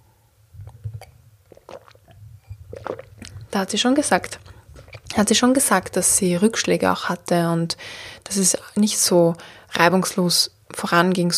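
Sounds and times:
wet mouth and swallowing noises: 0.5s - 6.0s
person sipping a drink: 0.6s - 5.2s
speech: 3.5s - 4.5s, 5.2s - 11.3s.

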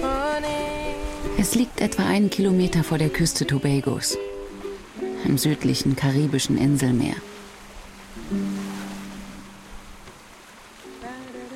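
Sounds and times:
ocean water lapping around an anchored 20 meter sailboat off Tobago: 0.0s - 11.5s
speech: 1.4s - 4.3s, 5.3s - 7.3s, 8.2s - 8.7s.

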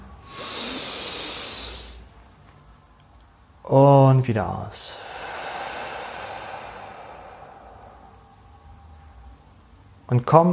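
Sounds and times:
long deep inhale through the nose: 0.2s - 2.0s, 4.8s - 9.0s
speech: 3.7s - 5.0s, 10.1s - 10.5s.

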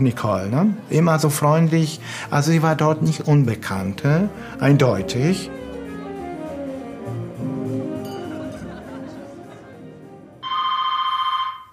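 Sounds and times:
speech: 0.0s - 5.6s
laughter: 8.0s - 10.4s
telephone ringing with electronic trill: 10.4s - 11.7s.

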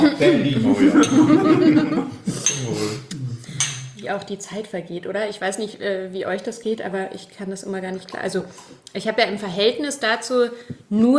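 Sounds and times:
people chuckling: 0.0s - 2.9s
speech: 0.0s - 3.2s, 4.0s - 11.1s
glasses clinking in a toast, one holding mineral water: 0.8s - 1.7s, 2.4s - 2.9s, 3.6s - 4.0s.

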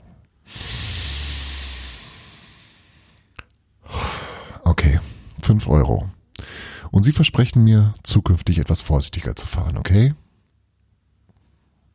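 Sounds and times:
man inhaling deeply: 0.4s - 5.3s, 6.4s - 6.9s
speech: 5.5s - 6.2s, 6.9s - 10.2s.

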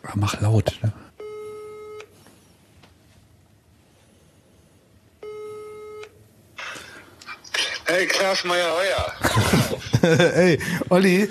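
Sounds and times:
speech: 0.2s - 1.1s, 8.0s - 11.3s
ringback tone of an outgoing telephone call: 1.2s - 2.0s, 5.2s - 6.1s
laughter: 9.0s - 11.2s.

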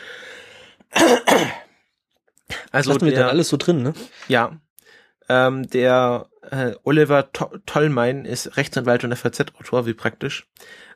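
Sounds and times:
faint breathy lead-in: 0.0s - 0.9s, 4.0s - 5.3s, 10.6s - 10.9s
speech: 1.0s - 1.6s, 2.8s - 4.6s, 5.3s - 10.9s
person clearing throat: 1.0s - 1.7s.

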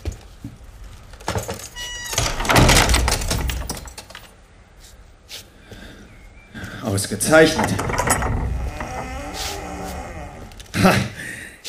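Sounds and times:
door latch and handle rattling: 1.2s - 4.4s, 7.2s - 10.8s
door creaking shut: 1.3s - 4.0s, 7.2s - 11.0s
speech: 7.0s - 8.2s, 10.8s - 11.1s.

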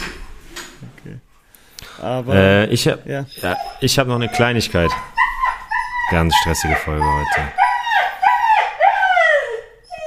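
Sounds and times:
speech: 2.0s - 5.2s, 6.1s - 7.6s
dog barking in drawn-out yelping cries: 3.3s - 10.0s.

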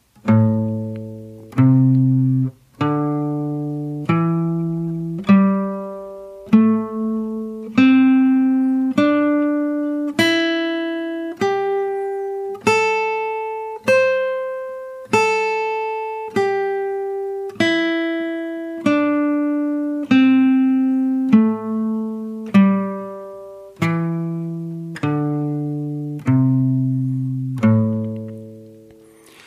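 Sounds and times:
guitar playing pentatonic scale notes with alternate picking: 0.0s - 29.4s.

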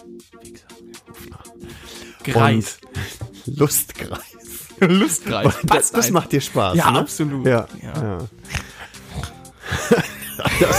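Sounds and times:
speech: 0.1s - 8.5s, 9.9s - 10.7s
laughter: 4.5s - 7.2s, 9.6s - 10.7s
raspy snoring: 8.5s - 9.6s.

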